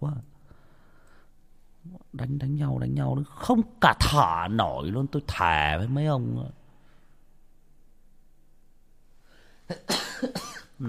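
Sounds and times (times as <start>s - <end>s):
speech: 0.0s - 0.3s, 1.8s - 6.6s, 9.7s - 10.8s
person sneezing on a cold day: 9.7s - 10.7s.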